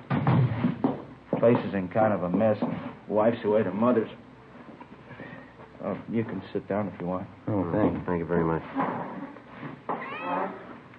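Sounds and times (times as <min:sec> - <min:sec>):
speech: 0:01.4 - 0:04.2, 0:05.8 - 0:09.3
Siamese cat meowing insistently: 0:09.9 - 0:10.8.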